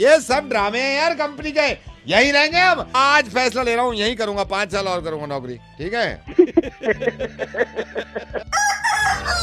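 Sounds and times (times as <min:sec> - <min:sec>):
speech: 0:00.0 - 0:09.4
laughter: 0:06.3 - 0:08.6
rooster crowing: 0:08.4 - 0:09.4.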